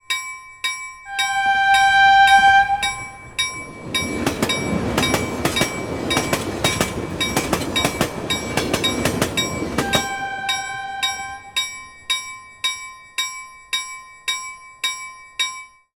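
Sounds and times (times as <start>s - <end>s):
train crossing bell: 0.0s - 15.8s
train crossing fast: 1.1s - 12.1s.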